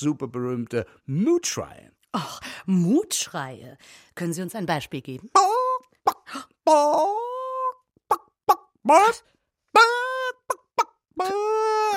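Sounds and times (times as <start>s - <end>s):
speech: 0.0s - 5.6s, 6.3s - 7.3s, 8.8s - 11.9s
person imitating a chicken with squawking and clucking: 5.3s - 11.9s.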